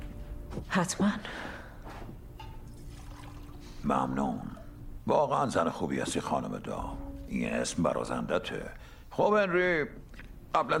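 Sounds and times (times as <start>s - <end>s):
speech: 0.5s - 1.6s, 3.8s - 10.7s
water pouring into a glass: 2.6s - 4.8s.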